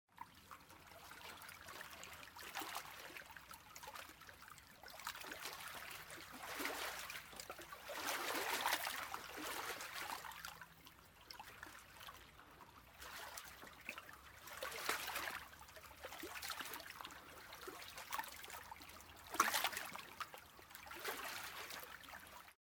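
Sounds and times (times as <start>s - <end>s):
boat on water: 0.1s - 22.6s.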